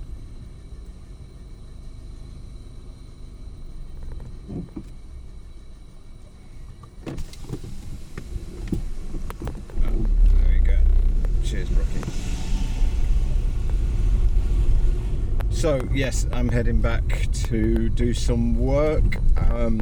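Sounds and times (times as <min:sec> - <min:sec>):
football team bus engine rumbling: 0:00.0 - 0:19.8
clunks as players board the bus: 0:03.9 - 0:05.6, 0:06.2 - 0:19.8
indistinct voices of players boarding: 0:09.7 - 0:19.8
speech: 0:15.6 - 0:19.8.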